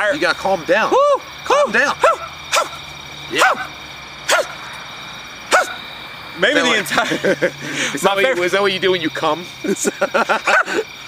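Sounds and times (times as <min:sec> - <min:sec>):
speech: 0:00.0 - 0:02.1, 0:03.3 - 0:03.8, 0:06.4 - 0:10.9
person imitating chihuahua barking: 0:01.5 - 0:02.8, 0:03.4 - 0:03.7, 0:04.3 - 0:04.6, 0:05.5 - 0:05.8
laughter: 0:06.4 - 0:08.5, 0:09.6 - 0:11.0.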